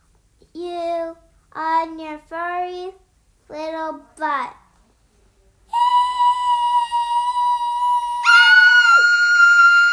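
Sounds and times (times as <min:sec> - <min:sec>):
speech: 0:00.6 - 0:04.6
high-pitched scream: 0:05.7 - 0:09.9.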